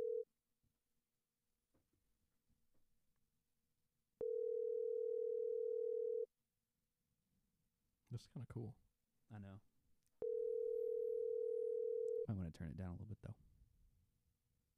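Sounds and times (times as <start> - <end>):
phone ringback tone: 0.0 - 0.2, 4.2 - 6.3, 10.2 - 12.2
speech: 8.1 - 9.7, 12.3 - 13.5.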